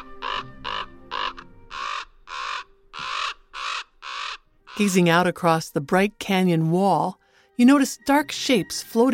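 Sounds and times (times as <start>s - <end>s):
common ravens calling and squabbling in pines: 0.0s - 5.3s
speech: 4.8s - 9.1s.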